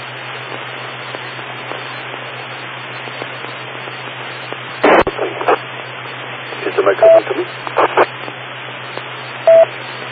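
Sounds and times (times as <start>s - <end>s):
low constant hum: 0.0s - 10.1s
electronic reset tone beeping: 6.6s - 7.3s, 9.4s - 9.7s
speech: 6.8s - 7.8s.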